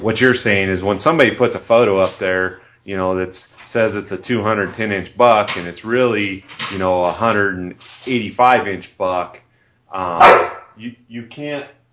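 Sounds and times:
speech: 0.0s - 11.8s
dog barking: 10.2s - 10.8s.

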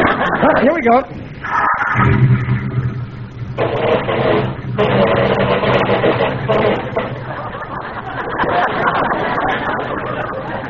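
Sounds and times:
laughter: 0.0s - 1.0s, 6.5s - 10.6s
speech: 0.6s - 2.3s
new car engine starting and revving: 1.4s - 7.8s.

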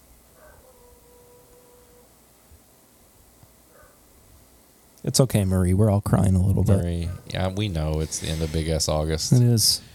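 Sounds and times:
soft hiss: 0.0s - 9.9s
dog howling: 0.4s - 2.1s
speech: 5.0s - 9.9s.

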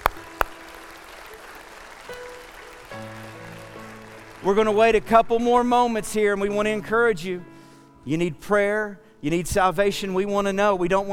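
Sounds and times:
audience applauding: 0.0s - 5.2s
soft sustained musical tones: 0.1s - 8.1s
speech: 4.4s - 11.1s.

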